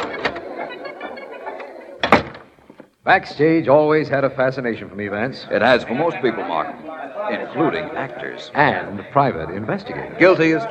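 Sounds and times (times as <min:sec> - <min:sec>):
laughter: 0:00.0 - 0:02.1, 0:04.4 - 0:10.6
sharp clunk of the door latch: 0:02.0 - 0:02.5
speech: 0:03.1 - 0:10.6.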